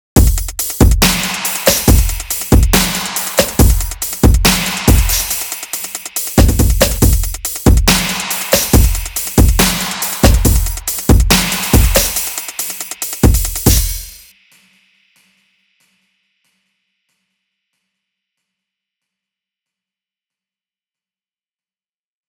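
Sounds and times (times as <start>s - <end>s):
EDM loop in F minor at 140 BPM: 0.2s - 14.2s.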